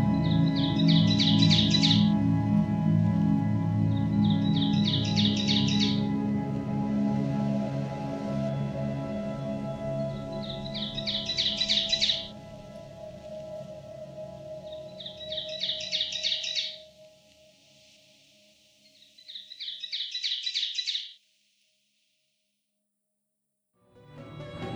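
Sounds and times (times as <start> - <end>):
ovenbird song: 0.0 - 2.7, 3.4 - 12.7, 14.1 - 17.0, 18.8 - 21.2.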